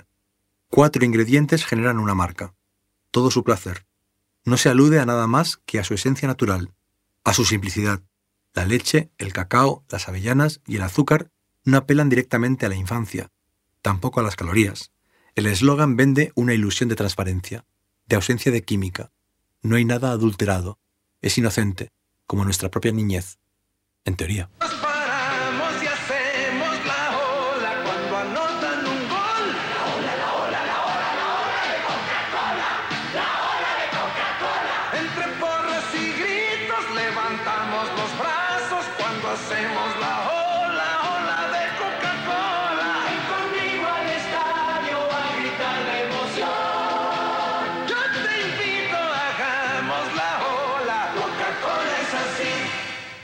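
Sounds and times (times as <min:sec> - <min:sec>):
speech: 0:00.8 - 0:23.4, 0:24.0 - 0:25.0
upbeat soft drink ad jingle with group singing: 0:24.6 - 0:53.2
stadium crowd cheering: 0:29.4 - 0:35.1.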